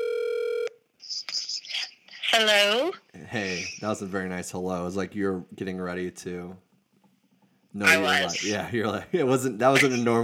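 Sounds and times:
telephone dial tone: 0.0s - 0.8s
speech: 2.3s - 6.7s, 7.7s - 10.2s.

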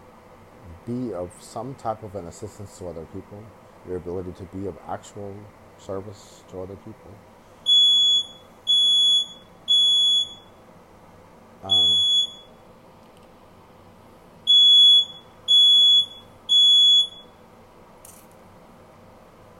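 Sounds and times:
speech: 0.8s - 7.3s, 11.6s - 12.0s
smoke alarm beeping: 7.6s - 10.6s, 11.7s - 12.6s, 14.4s - 17.4s.

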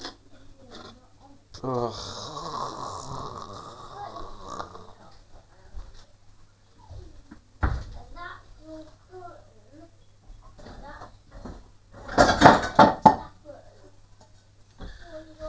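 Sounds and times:
speech: 1.6s - 2.2s
dishes clattering as a pan is taken out: 12.1s - 13.3s.

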